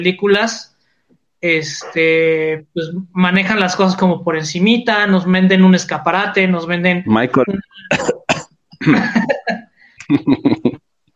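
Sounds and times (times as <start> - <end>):
speech: 0.0 - 0.7, 1.4 - 8.2, 8.8 - 9.4, 10.1 - 10.8
person coughing in sharp bursts: 7.6 - 9.6
laughter: 8.8 - 10.8.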